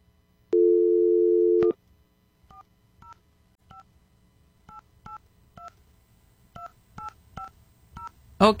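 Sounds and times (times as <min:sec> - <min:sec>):
telephone keypad dialing tones: 0:00.6 - 0:01.8.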